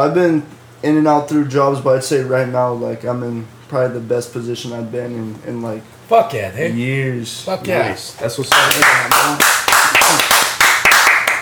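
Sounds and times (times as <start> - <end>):
speech: 0.0 - 9.5
one person clapping hands: 8.5 - 11.4.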